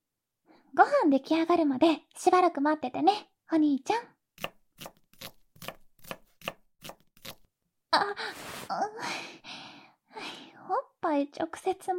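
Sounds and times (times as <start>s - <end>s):
speech: 0.8s - 4.2s, 7.9s - 9.6s, 10.2s - 11.9s
kitchen knife chopping food on a cutting board: 4.4s - 7.4s
person letting out breathy gasps and sighs: 8.0s - 10.6s.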